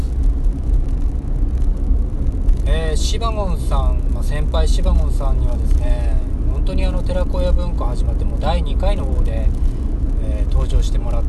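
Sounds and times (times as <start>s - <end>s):
car engine rumble heard from inside the vehicle: 0.0s - 11.2s
faint road hiss: 0.0s - 11.2s
speech: 3.0s - 11.2s.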